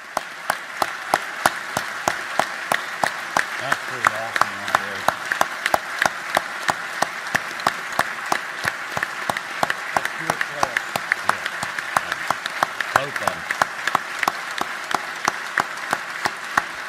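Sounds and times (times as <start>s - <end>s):
large crowd giving standing-ovation applause in a legislative chamber: 0.0s - 16.8s
rhythmic clapping: 0.0s - 16.8s
voices: 3.6s - 5.1s, 13.0s - 13.4s.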